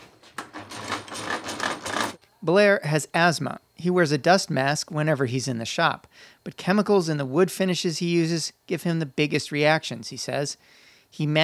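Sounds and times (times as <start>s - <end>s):
antique hand drill being cranked, gears whirring and clicking: 0.3s - 2.2s
speech: 2.4s - 11.4s.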